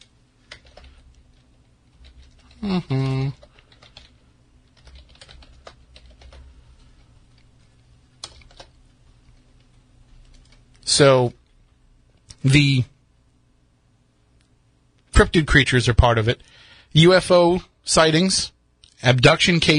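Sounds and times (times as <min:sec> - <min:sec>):
typing on a computer keyboard: 0:00.0 - 0:10.8
speech: 0:02.6 - 0:03.5, 0:11.0 - 0:11.4, 0:12.4 - 0:12.9, 0:15.2 - 0:19.7.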